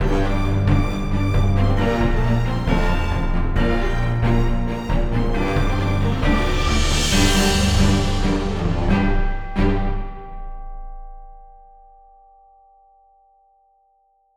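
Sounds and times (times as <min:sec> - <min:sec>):
quiet symphonic music: 0:00.0 - 0:11.0.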